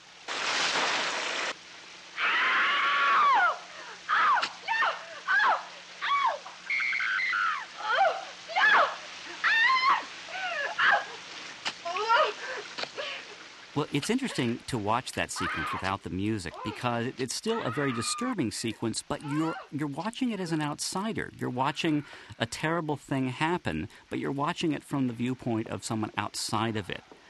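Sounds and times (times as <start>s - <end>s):
running shower in a film shower scene: 0.0s - 22.3s
woman screaming in a film shower scene: 2.2s - 11.2s, 11.8s - 13.2s, 15.4s - 15.8s, 17.5s - 18.3s, 19.2s - 19.7s
speech: 13.8s - 27.1s.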